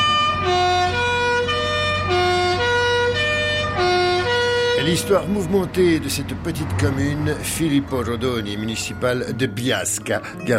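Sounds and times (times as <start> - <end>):
bus horn blaring a bright three-tone melody: 0.0 - 5.5
low bus engine rumble: 0.0 - 10.5
speech: 4.8 - 10.5.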